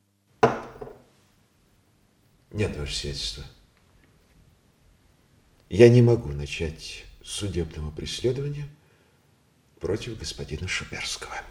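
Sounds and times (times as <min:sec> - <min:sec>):
wine glass set down on a tabletop: 0:00.4 - 0:01.0
speech: 0:02.5 - 0:03.6, 0:05.7 - 0:08.8, 0:09.8 - 0:11.4.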